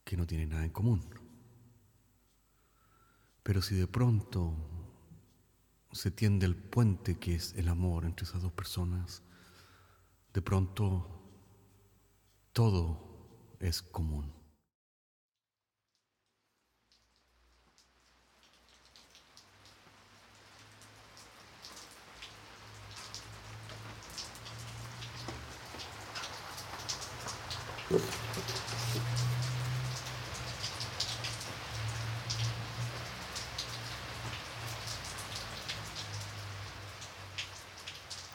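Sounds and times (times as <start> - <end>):
speech: 0.1 - 1.3, 3.4 - 4.8, 5.9 - 9.3, 10.3 - 11.2, 12.6 - 14.4
rain pattering across a surface: 16.3 - 38.3.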